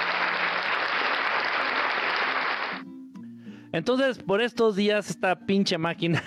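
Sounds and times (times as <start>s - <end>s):
dense applause of a full crowd clapping: 0.0s - 2.8s
speech: 3.7s - 6.2s.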